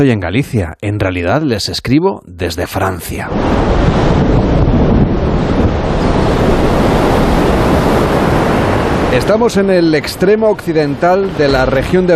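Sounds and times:
speech: 0.0 - 4.7, 9.1 - 12.1
wind on a stormy coast in Finistère Brittany France: 2.8 - 12.1
surf crashing on a stormy coast in Finistère Brittany France: 3.2 - 12.1
heavy rain on a stormy coast in Finistère: 3.3 - 12.1.

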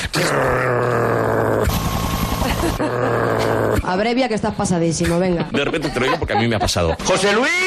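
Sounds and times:
man vocally imitating a stag beetle's buzzing flight: 0.0 - 3.9
laughter: 2.3 - 3.4, 5.1 - 7.5
speech: 3.9 - 7.6.

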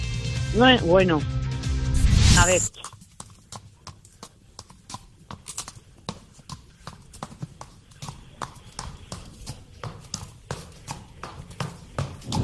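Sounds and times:
speech: 0.5 - 1.4, 2.4 - 3.0
horse hooves trotting: 2.7 - 12.4.

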